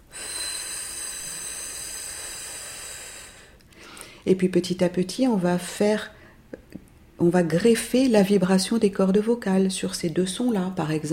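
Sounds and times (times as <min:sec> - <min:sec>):
person blowing air through the mouth as a breathing exercise: 0:00.0 - 0:04.1
speech: 0:04.2 - 0:06.2, 0:07.2 - 0:11.1.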